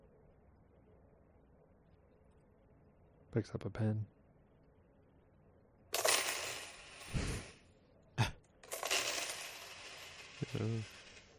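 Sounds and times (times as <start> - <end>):
speech: 3.3 - 4.2, 10.5 - 11.0
stack of coins toppling and scattering: 5.9 - 7.6, 8.6 - 11.3.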